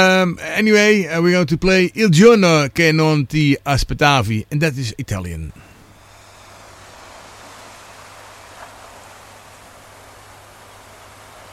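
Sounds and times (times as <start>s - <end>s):
speech: 0.0s - 5.7s
hissing wash of ocean waves on the shore: 5.6s - 11.5s.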